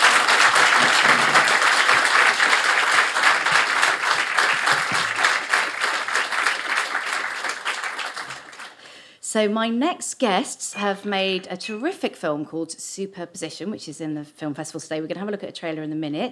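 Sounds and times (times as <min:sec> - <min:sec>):
sizable audience applauding: 0:00.0 - 0:08.8
speech: 0:09.4 - 0:16.3.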